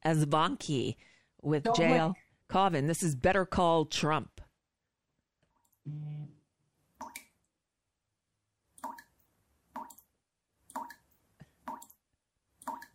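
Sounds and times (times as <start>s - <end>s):
speech: 0.0s - 4.4s, 5.8s - 6.3s
short voiced hum: 5.8s - 6.4s.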